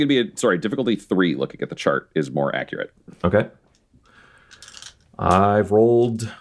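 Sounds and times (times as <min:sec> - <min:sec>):
speech: 0:00.0 - 0:03.6, 0:05.2 - 0:06.3
dice tumbling across a surface: 0:04.5 - 0:05.4.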